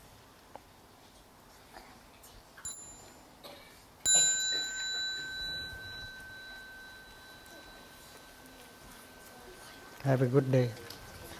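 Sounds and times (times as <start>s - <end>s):
small bell ringing at a retreat: 2.6s - 11.3s
speech: 10.0s - 10.9s.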